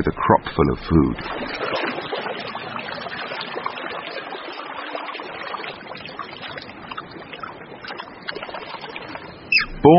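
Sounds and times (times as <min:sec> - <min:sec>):
speech: 0:00.0 - 0:01.8
freshwater stream flowing through a forest: 0:01.0 - 0:09.9.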